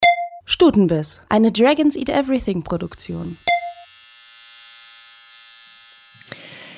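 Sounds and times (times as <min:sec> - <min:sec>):
speech: 0:00.5 - 0:03.5
tattoo machine buzzing: 0:02.8 - 0:06.7.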